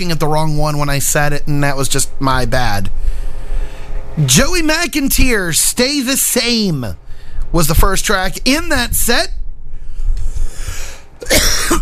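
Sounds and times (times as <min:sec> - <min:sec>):
speech: 0:00.0 - 0:03.0, 0:04.2 - 0:09.4
low rumble: 0:00.0 - 0:05.6, 0:06.8 - 0:11.8
cough from a tickle in the throat: 0:11.2 - 0:11.8.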